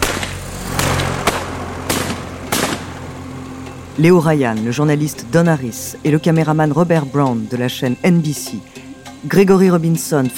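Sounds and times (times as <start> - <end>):
gunshots: 0.0 - 3.0
rumbling noise: 0.0 - 7.9
speech: 4.0 - 10.3.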